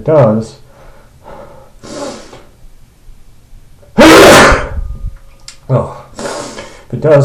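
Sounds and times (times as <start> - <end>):
speech: 0.0 - 0.6, 5.7 - 6.0, 7.0 - 7.2
sneeze from someone suffering a cold: 4.0 - 4.8.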